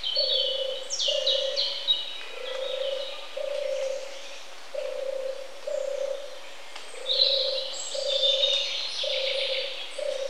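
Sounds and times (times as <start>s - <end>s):
turtle dove cooing: 0.2s - 1.6s, 2.4s - 4.1s, 4.7s - 6.4s, 7.0s - 10.2s.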